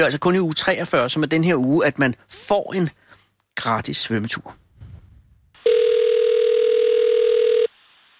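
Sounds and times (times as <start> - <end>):
speech: 0.0 - 3.0, 3.6 - 4.6
telephone ringing tone of outgoing call: 5.6 - 7.7.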